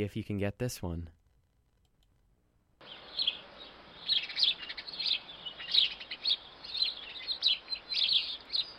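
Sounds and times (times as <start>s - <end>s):
speech: 0.0s - 1.2s
faint hiss: 0.0s - 8.7s
house sparrow chirping: 2.8s - 8.7s.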